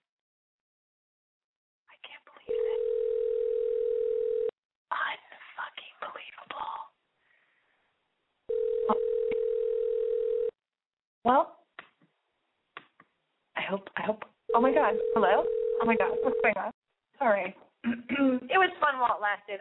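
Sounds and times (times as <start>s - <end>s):
phone line ringback tones while waiting for an answer: 2.5s - 4.5s, 8.5s - 10.6s, 14.5s - 16.6s
speech: 11.2s - 11.6s, 13.7s - 19.5s.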